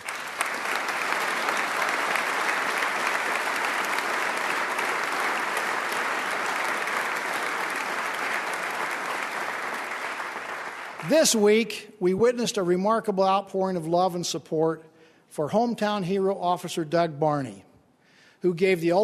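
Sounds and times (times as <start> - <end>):
sustained applause from a large audience in a legislative chamber: 0.0 - 11.6
speech: 11.1 - 17.7, 18.4 - 19.0.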